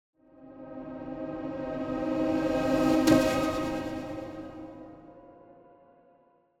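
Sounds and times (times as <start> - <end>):
reversed symphonic orchestral hit: 1.4 - 5.0.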